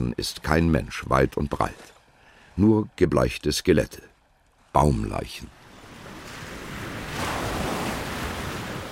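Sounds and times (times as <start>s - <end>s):
speech: 0.2s - 2.0s, 2.6s - 4.1s, 4.7s - 5.6s
surf breaking on a beach: 5.5s - 8.9s.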